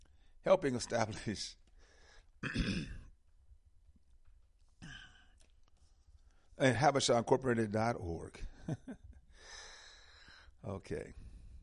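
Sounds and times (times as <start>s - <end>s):
speech: 0.4s - 1.6s, 2.4s - 3.0s, 6.6s - 9.6s, 10.6s - 11.3s
person clearing throat with phlegm: 2.4s - 3.1s, 4.8s - 5.4s.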